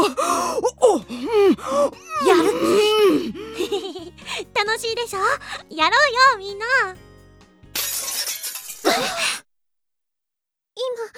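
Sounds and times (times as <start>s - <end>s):
person gasping or sighing: 0.0s - 4.6s, 5.4s - 5.7s, 9.0s - 9.4s
laughter: 2.3s - 4.2s, 8.0s - 9.4s
speech: 4.9s - 7.0s
glass shattering: 7.8s - 9.2s.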